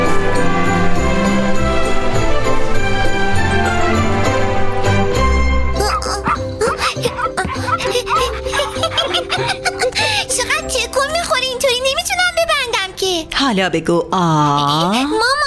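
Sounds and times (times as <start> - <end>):
busy music: 0.0 - 15.4
dog barking: 5.8 - 9.6
laughter: 5.8 - 10.6
speech: 13.5 - 15.3.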